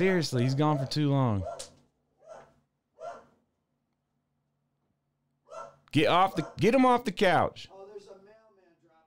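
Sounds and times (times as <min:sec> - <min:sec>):
speech: 0:00.0 - 0:01.6, 0:05.9 - 0:07.7
dog barking: 0:00.3 - 0:03.4, 0:05.4 - 0:06.7.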